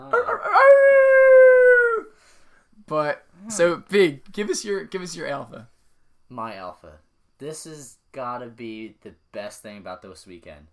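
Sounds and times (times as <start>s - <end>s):
wolf howl: 0.0s - 2.1s
speech: 2.9s - 5.7s, 6.3s - 10.7s.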